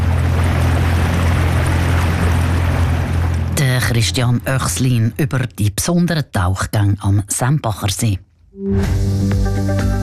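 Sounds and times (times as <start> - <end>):
water churning and splashing around a moving boat on a lake: 0.0 - 5.3
boat engine droning with a deep throbbing hum: 0.0 - 5.8
speech: 4.0 - 9.9.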